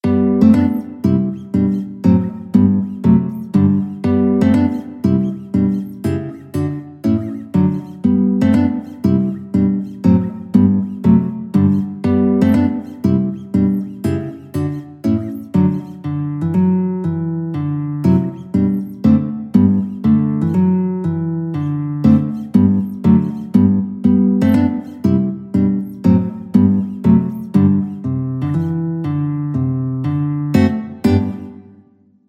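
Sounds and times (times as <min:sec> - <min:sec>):
march played on guitar: 0:00.0 - 0:31.8.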